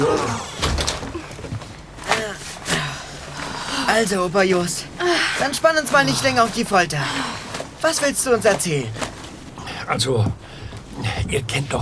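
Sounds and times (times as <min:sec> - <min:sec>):
door being shut with dull thuds and rattling: 0:00.0 - 0:02.0
low room noise: 0:00.0 - 0:11.7
speech: 0:04.0 - 0:09.0, 0:09.9 - 0:11.7.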